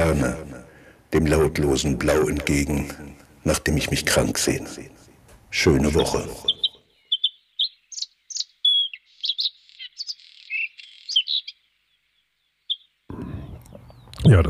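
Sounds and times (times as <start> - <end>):
speech: 0.1 - 0.5, 1.1 - 6.6, 14.3 - 14.4
bird singing: 5.7 - 14.4.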